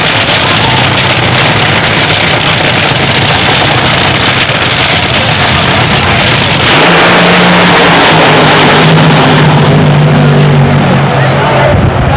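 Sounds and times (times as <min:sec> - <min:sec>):
top fuel drag racing engines: 0:00.0 - 0:12.1.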